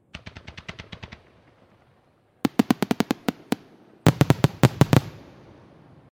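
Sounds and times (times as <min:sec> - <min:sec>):
fireworks in rapid succession: 0:00.0 - 0:06.0.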